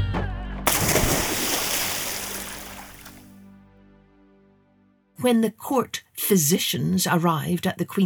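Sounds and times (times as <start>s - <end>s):
churning bubbling water in a moat: 0.7s - 3.2s
heavy splash of a person falling off a ladder into a moat: 0.7s - 3.2s
speech: 5.2s - 8.0s.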